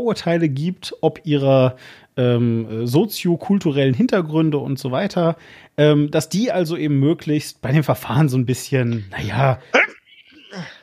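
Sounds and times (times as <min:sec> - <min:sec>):
speech: 0:00.0 - 0:10.8
person sneezing: 0:09.7 - 0:10.8.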